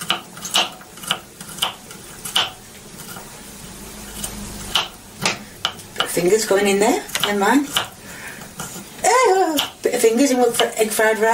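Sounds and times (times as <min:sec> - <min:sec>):
knife chopping garlic for egg fried rice: 0:00.0 - 0:03.2, 0:04.2 - 0:06.3, 0:07.1 - 0:08.0, 0:09.4 - 0:11.0
speech: 0:06.2 - 0:07.9, 0:10.0 - 0:11.3.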